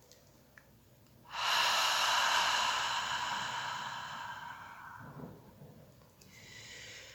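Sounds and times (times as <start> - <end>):
slow exhale through an open mouth: 1.3 - 5.4, 6.3 - 7.1
quiet inhale: 1.3 - 5.6, 6.2 - 7.1.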